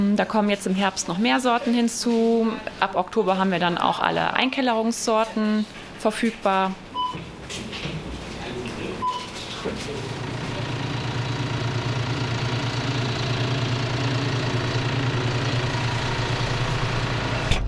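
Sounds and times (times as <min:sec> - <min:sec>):
speech: 0:00.0 - 0:07.6, 0:09.6 - 0:10.2
tractor engine idling before potato harvest: 0:09.6 - 0:17.5.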